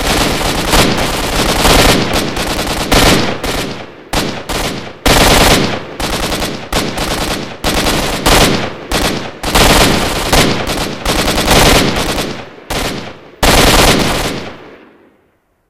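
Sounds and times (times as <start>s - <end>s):
gunfire: 0.0s - 15.1s.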